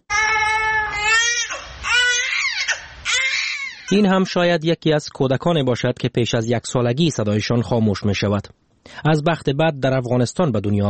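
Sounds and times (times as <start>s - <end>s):
newborn baby crying loudly: 0.1s - 4.3s
speech: 3.9s - 10.8s.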